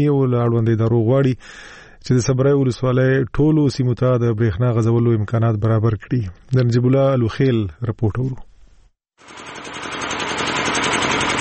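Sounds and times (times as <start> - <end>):
speech: 0.0 - 8.5
old electricity generator running in a market in Khost province: 9.2 - 11.3.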